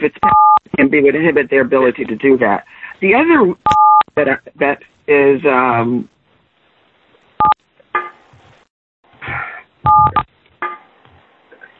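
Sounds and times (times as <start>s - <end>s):
speech: 0.0s - 6.2s
telephone keypad dual-tone beeps: 9.9s - 10.3s.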